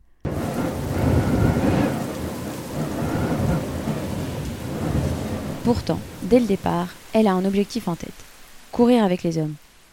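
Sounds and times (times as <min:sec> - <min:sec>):
deep rolling thunder: 0:00.3 - 0:07.0
steady downpour of rain at the start of a footrace: 0:00.3 - 0:09.9
speech: 0:05.7 - 0:09.6.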